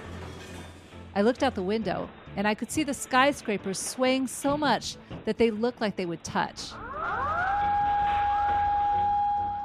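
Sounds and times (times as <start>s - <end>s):
speech: 1.2s - 6.8s
emergency sirens wailing: 6.7s - 9.6s.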